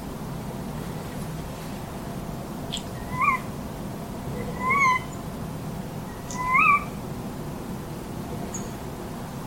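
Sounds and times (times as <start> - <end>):
steady low hiss: 0.0 - 9.4
female tawny owl kewick calls across a lake in a Brandenburg forest: 2.7 - 3.5, 4.3 - 5.2, 6.1 - 7.0.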